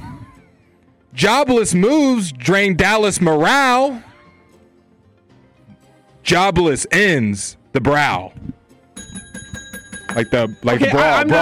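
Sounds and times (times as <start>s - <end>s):
speech: 1.2s - 4.1s, 6.3s - 8.6s, 10.1s - 11.4s
bell ringing as a signal during a word game: 9.0s - 11.4s.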